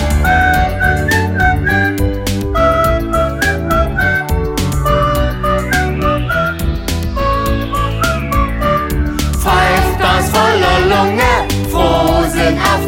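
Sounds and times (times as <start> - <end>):
whistled melody: 0.0 - 10.1
loud busy band accompaniment: 0.0 - 11.7.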